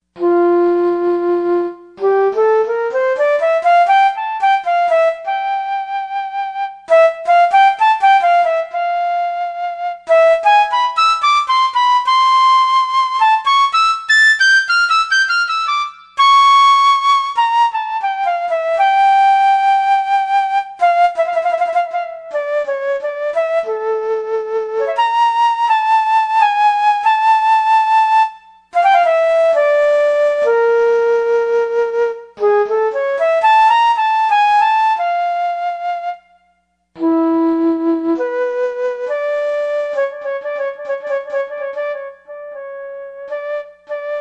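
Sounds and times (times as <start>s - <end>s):
flute factory preset on a Yamaha TG55: 0.1s - 44.2s.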